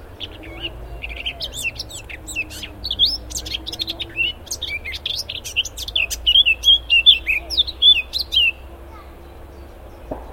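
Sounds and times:
Eurasian blackcap song: 0.0 - 10.3.

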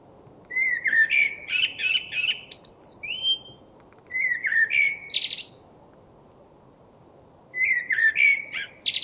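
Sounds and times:
Common blackbird song: 0.5 - 5.6, 7.6 - 9.0.

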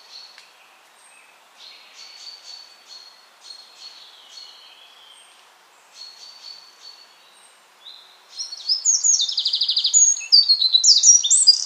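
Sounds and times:
Eurasian wren Troglodytes troglodytes singing: 8.4 - 11.6.

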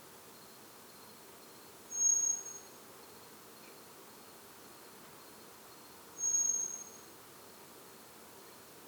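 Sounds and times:
faint steady background noise: 0.0 - 8.8
Eurasian blackbird Turdus merula calling with thin whistled notes: 1.9 - 2.7, 6.2 - 7.0.

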